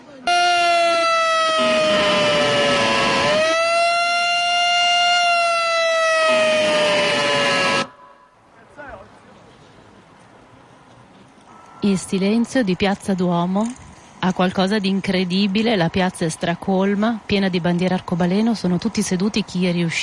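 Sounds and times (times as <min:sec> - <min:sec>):
loud siren wailing: 0:00.3 - 0:08.3
speech: 0:12.0 - 0:20.0.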